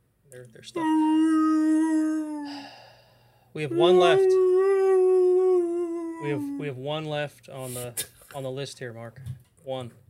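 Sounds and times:
speech: 0:00.3 - 0:02.7, 0:03.6 - 0:04.6, 0:06.2 - 0:10.0
man's voice imitating whale song: 0:00.8 - 0:02.8, 0:03.7 - 0:06.8.

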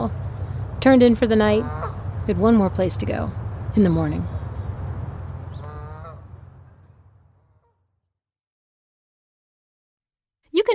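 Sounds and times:
birds calling in the woods at Sapsucker Woods: 0:00.0 - 0:07.9
low steady rumble of outdoor noise: 0:00.0 - 0:07.9
speech: 0:00.8 - 0:04.4.

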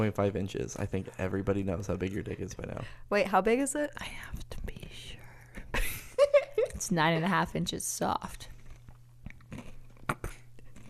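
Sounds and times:
speech: 0:00.0 - 0:05.2, 0:06.8 - 0:08.5
crunchy chewing and biting at the microphone: 0:08.4 - 0:10.8.

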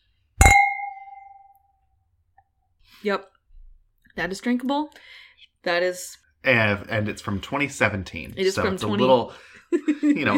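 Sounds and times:
wine glasses clinking together in a toast: 0:00.4 - 0:01.5
speech: 0:03.0 - 0:03.4, 0:04.2 - 0:10.3.

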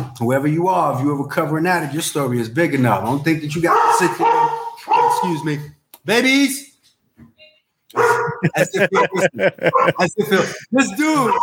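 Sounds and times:
speech: 0:00.2 - 0:06.6, 0:08.4 - 0:11.4
dog barking: 0:03.6 - 0:05.4, 0:07.9 - 0:10.1, 0:11.2 - 0:11.4
laughter: 0:08.0 - 0:11.4.

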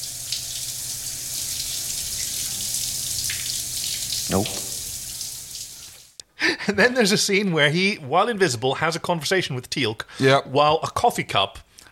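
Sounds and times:
shower water running: 0:00.0 - 0:06.2
speech: 0:04.3 - 0:04.6, 0:06.7 - 0:11.7.

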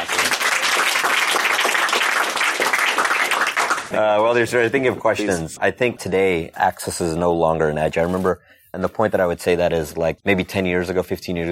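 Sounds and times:
crowd applauding: 0:00.0 - 0:04.0
speech: 0:03.9 - 0:11.5.

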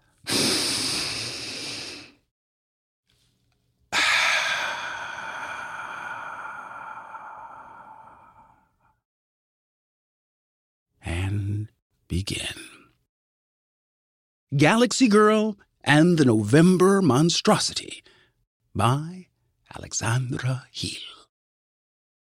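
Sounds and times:
deep breathing: 0:00.1 - 0:02.3, 0:03.9 - 0:09.0
speech: 0:12.1 - 0:12.7, 0:14.5 - 0:18.1, 0:18.8 - 0:21.2.

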